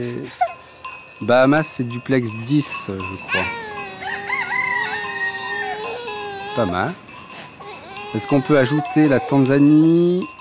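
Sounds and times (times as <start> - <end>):
speech: 0.0 - 0.5, 1.2 - 3.6, 6.6 - 7.0, 8.1 - 10.3
rooster crowing in the Bahamas: 3.6 - 6.7.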